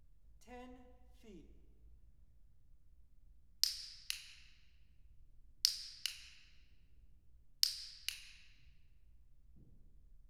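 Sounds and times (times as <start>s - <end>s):
acoustic clicker clicking at 10 feet: 3.6s - 4.6s, 5.6s - 6.6s, 7.6s - 8.8s.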